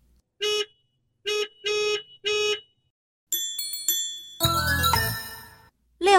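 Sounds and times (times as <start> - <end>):
taxi horns honking: 0.4 - 2.9
bright jingling chime: 3.3 - 5.7.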